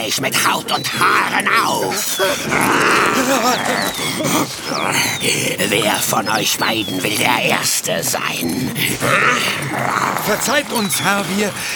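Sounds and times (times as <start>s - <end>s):
laughter: 0.0s - 11.7s
speech: 0.0s - 11.7s
lion roaring: 1.0s - 6.4s, 8.2s - 11.7s.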